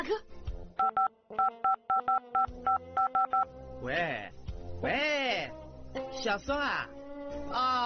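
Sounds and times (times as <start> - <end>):
speech: 0.0 - 0.4, 1.3 - 7.8
mobile phone keypad dialing beeps: 0.8 - 3.5.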